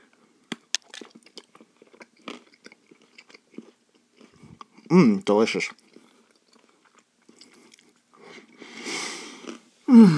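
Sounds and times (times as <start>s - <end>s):
chocolate bricks with almonds bitten and chewed: 0.4s - 4.9s, 5.5s - 8.6s, 9.2s - 9.7s
speech: 4.9s - 5.8s, 10.0s - 10.1s.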